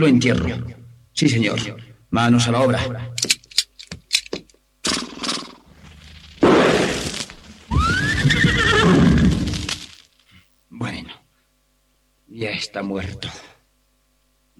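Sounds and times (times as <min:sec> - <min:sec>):
speech: 0:00.0 - 0:03.4, 0:12.4 - 0:13.5
horse neighing with a long whinny: 0:07.7 - 0:09.5.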